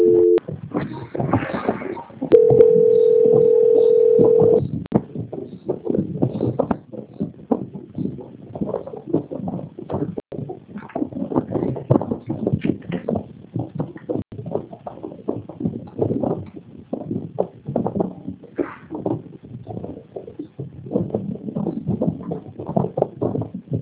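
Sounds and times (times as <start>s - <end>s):
telephone ringback tone during a call transfer: 0.0s - 0.4s, 2.3s - 4.6s
irregular noisy telephone line sounds: 0.0s - 23.8s.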